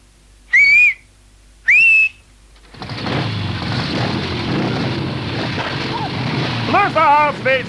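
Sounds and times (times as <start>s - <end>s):
traffic whistle blasts on a busy square: 0.5s - 2.3s
heavy traffic on a busy square: 2.6s - 7.6s.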